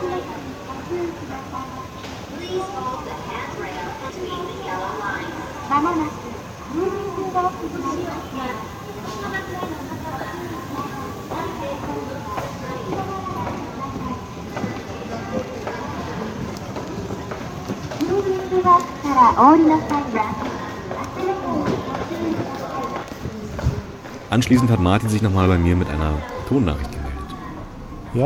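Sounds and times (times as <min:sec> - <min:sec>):
crowd chatter in a busy train station: 0:00.0 - 0:28.2
speech: 0:19.4 - 0:20.4, 0:24.4 - 0:27.0
low rail rumble of trains: 0:24.2 - 0:28.2.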